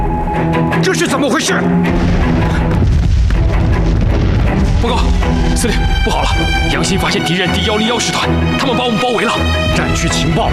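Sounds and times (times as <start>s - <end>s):
speech: 0.9s - 2.9s, 4.8s - 10.5s
wartime howitzer and field gun artillery explosions: 1.9s - 6.6s.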